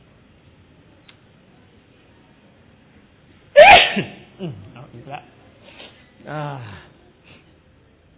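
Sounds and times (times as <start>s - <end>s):
Buddhist monk sneezing: 3.6s - 4.3s
speech: 4.0s - 5.4s, 6.2s - 6.9s.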